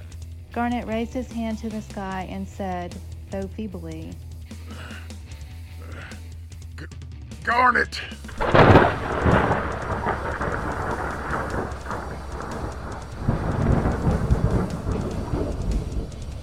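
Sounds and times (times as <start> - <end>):
speech: 0.6 - 4.9, 7.5 - 9.4
loud crack and rumbling roar of thunder from a lightning strike: 8.3 - 16.4.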